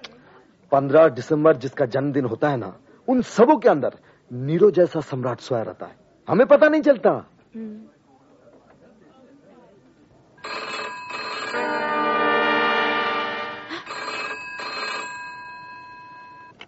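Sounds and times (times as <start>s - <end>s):
faint murmur: 0.0s - 4.0s, 7.2s - 10.5s
speech: 0.7s - 8.0s
telephone ringing with an electronic trill: 10.4s - 16.6s.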